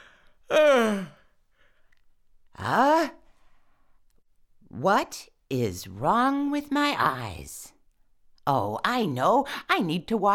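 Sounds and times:
voice imitating a fox's waking yawn: 0.4s - 1.3s
speech: 4.8s - 7.7s, 8.5s - 10.3s.

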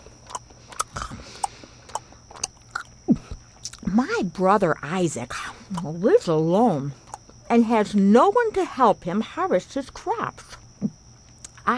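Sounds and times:
person biting and chewing freshly baked wheat bread with butter: 0.0s - 3.9s, 7.0s - 7.4s
speech: 3.9s - 10.5s.

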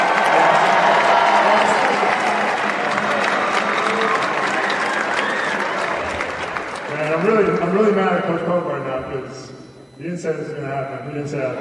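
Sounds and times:
sustained applause from a large audience: 0.0s - 7.9s
speech: 7.8s - 11.5s.

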